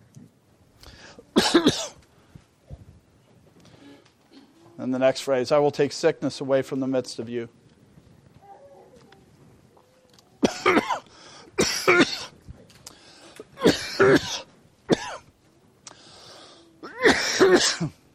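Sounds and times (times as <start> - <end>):
man coughing: 1.3 - 2.0, 10.4 - 12.3, 13.6 - 15.2, 16.8 - 18.0
speech: 1.4 - 1.9, 4.9 - 7.6.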